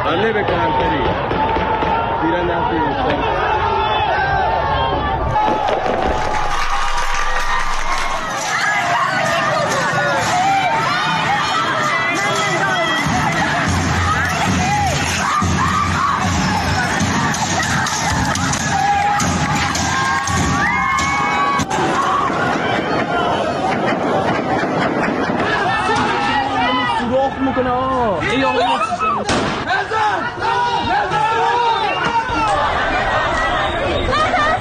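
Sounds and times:
large crowd shouting at a street protest in Iran: 0.0 - 34.5
laughter: 23.5 - 26.6.

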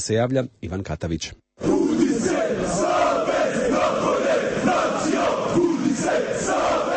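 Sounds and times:
speech: 0.0 - 3.0
large crowd of football fans chanting in protest: 1.6 - 6.9.

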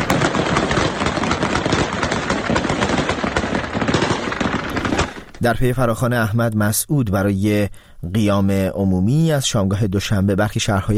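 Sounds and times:
heavy gunfire at a street protest: 0.0 - 5.4
speech: 5.4 - 10.9.

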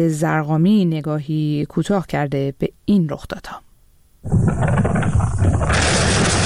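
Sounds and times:
speech: 0.0 - 6.0
explosion boom and rumble: 4.3 - 6.4.

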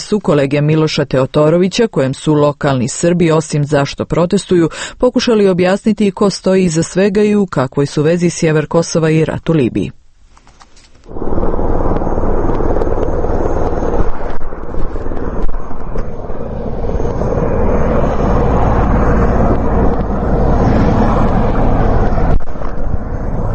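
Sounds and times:
speech: 0.1 - 10.0, 11.1 - 11.4
wind buffeting: 11.0 - 23.5
military helicopters flying customs officers to border crossings: 11.1 - 23.5.

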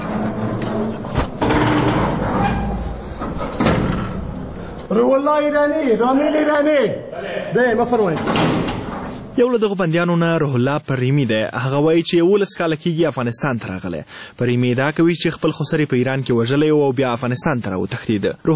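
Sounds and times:
iron door of a prison in Herat being opened by a guard: 0.0 - 4.7, 8.0 - 9.4
metal scraping of a prison iron door: 0.0 - 4.9
speech: 5.0 - 8.5, 9.4 - 18.5.

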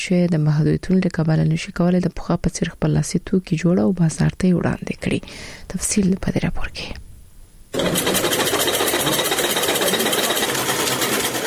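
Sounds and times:
speech: 0.0 - 7.1, 7.7 - 8.3
sewing machines running in a tailoring workshop: 7.8 - 11.4.

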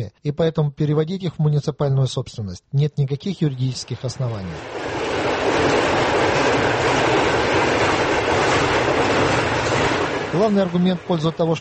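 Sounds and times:
speech: 0.0 - 5.8, 10.4 - 11.5
train rumbling past on railway tracks beside barracks housing: 4.2 - 11.5.

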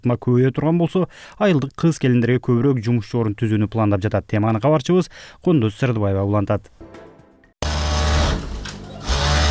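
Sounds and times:
speech: 0.0 - 7.0
sewing machines running in a small village sewing workshop: 7.6 - 9.4.

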